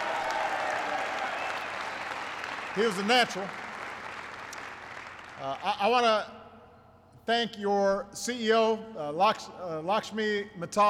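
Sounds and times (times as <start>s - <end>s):
audience applause during a speech: 0.0s - 5.5s
speech: 2.8s - 3.6s, 5.4s - 6.4s, 7.2s - 10.8s.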